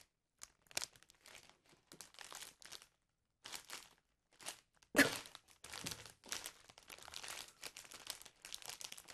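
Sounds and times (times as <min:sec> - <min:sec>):
ASMR crinkling and crunching imitating footsteps on crispy dry leaves: 0:00.4 - 0:09.1.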